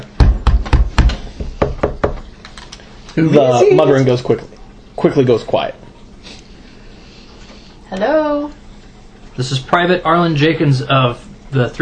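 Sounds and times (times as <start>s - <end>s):
firm knocks on a wooden door: 0.0s - 2.2s
speech: 3.2s - 5.8s, 7.9s - 8.6s, 9.4s - 11.8s.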